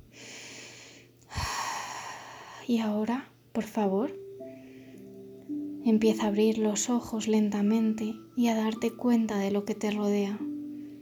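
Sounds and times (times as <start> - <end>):
slow deep breath in and out: 0.1 - 2.7, 4.5 - 5.4
speech: 2.7 - 4.2, 5.8 - 10.5.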